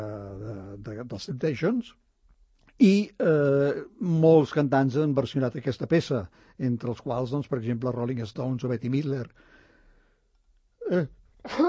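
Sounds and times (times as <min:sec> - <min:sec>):
speech: 0:01.0 - 0:02.0, 0:02.8 - 0:09.5, 0:10.9 - 0:11.6
person sneezing live on air in a radio studio: 0:10.8 - 0:11.6.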